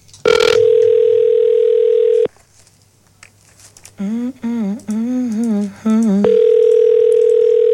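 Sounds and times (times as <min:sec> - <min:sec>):
telephone ringback tone of an outgoing call: 0:00.3 - 0:02.3, 0:06.3 - 0:07.7
person talking: 0:04.0 - 0:06.5.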